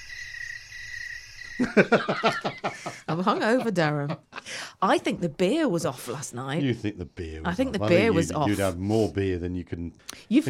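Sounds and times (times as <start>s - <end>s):
crickets chirping: 0.0s - 2.7s
laughter: 1.6s - 4.6s, 6.6s - 8.6s
speech: 1.6s - 10.4s.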